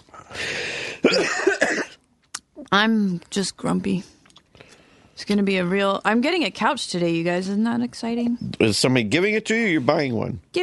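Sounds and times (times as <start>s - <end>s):
raspy intake of breath from a sick person: 0.2s - 1.0s
sick person coughing harshly: 1.0s - 2.0s
speech: 2.7s - 4.2s, 5.2s - 10.6s.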